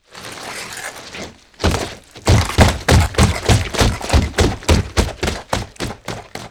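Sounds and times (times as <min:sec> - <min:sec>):
fast monster footsteps: 0:01.6 - 0:06.4.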